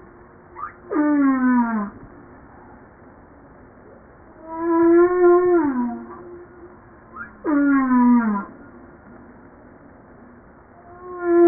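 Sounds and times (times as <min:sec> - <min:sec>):
humpback whale song: 0:00.5 - 0:02.0, 0:04.4 - 0:08.8, 0:10.8 - 0:11.4.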